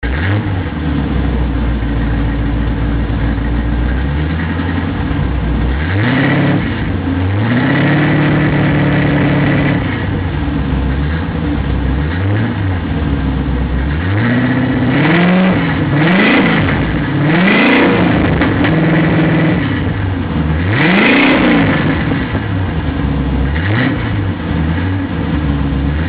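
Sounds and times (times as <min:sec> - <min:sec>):
big block engine exhaust through two Flowmaster Super 50 series mufflers: 0:00.0 - 0:26.0.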